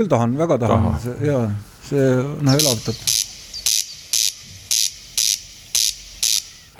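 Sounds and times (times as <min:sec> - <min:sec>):
speech: 0:00.0 - 0:03.3
corncrake's dry, rasping call: 0:02.5 - 0:06.7.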